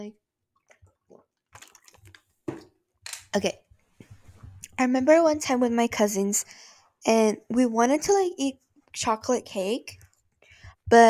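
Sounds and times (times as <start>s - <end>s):
speech: 0.0s - 0.2s, 3.4s - 3.6s, 4.8s - 10.0s
person sipping water: 1.1s - 2.2s.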